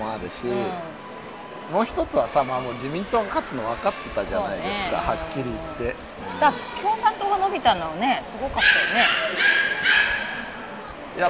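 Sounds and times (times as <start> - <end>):
speech: 0.3 - 1.1, 1.7 - 10.0
dog barking with sharp mid-pitched yaps: 8.6 - 10.6.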